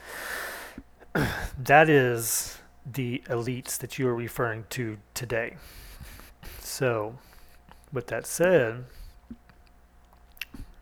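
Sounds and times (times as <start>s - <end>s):
speech: 1.2s - 6.1s, 6.7s - 7.3s, 7.9s - 9.4s
chewing gum with soft wet smacks and clicks: 9.2s - 10.8s.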